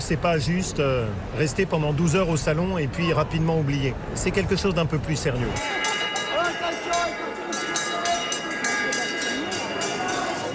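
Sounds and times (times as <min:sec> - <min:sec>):
crowd noise and voices at an agricultural fair: 0:00.0 - 0:10.5
speech: 0:00.1 - 0:06.0
closing bell ringing at an agricultural fair: 0:05.6 - 0:10.5.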